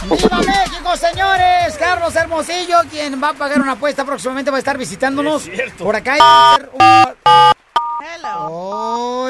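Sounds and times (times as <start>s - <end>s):
speech: 0.1s - 0.5s, 1.4s - 9.2s
telephone keypad DTMF beeps: 6.2s - 8.5s.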